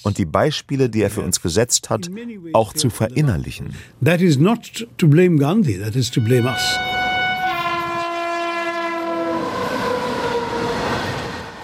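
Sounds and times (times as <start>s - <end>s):
speech: 0.0s - 7.0s
train horn at a railway station: 6.1s - 11.6s.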